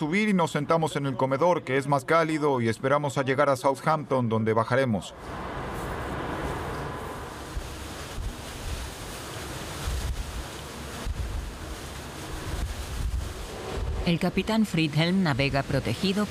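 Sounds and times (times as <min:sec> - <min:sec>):
speech: 0:00.0 - 0:05.6, 0:14.1 - 0:16.2
gusting wind buffeting the microphone: 0:05.2 - 0:16.2
low rumbling sea swells: 0:05.2 - 0:16.2
rough sea with waves about 4 metres high surging and crashing: 0:05.2 - 0:16.2.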